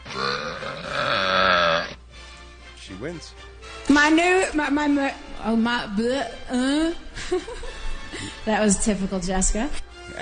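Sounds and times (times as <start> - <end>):
long rumbling burp in a burping contest: 0.0 - 2.0
speech: 3.0 - 10.1.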